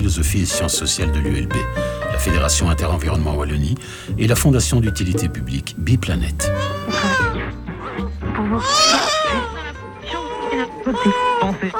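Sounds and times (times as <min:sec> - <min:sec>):
speech: 0:00.0 - 0:07.4, 0:08.5 - 0:09.0, 0:10.9 - 0:11.7
baby crying in a radio station jingle: 0:06.5 - 0:11.7.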